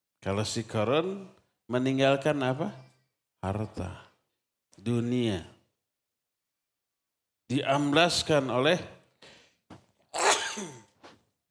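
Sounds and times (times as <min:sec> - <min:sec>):
speech: 0:00.2 - 0:04.1, 0:04.8 - 0:05.6, 0:07.5 - 0:09.0
sneeze: 0:10.2 - 0:11.0.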